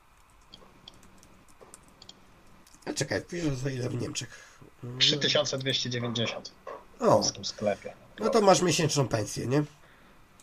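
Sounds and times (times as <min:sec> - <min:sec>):
steady low hiss: 0:00.0 - 0:10.4
computer mouse clicking: 0:00.2 - 0:02.9
speech: 0:03.0 - 0:09.8.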